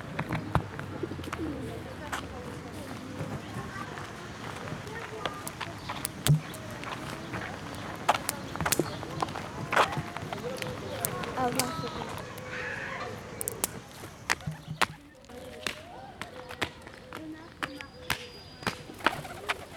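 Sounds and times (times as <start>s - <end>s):
bird calls with low dove-like cooing: 0.0s - 19.7s
sharp clicks and rustling taps: 5.2s - 12.5s, 13.3s - 18.8s.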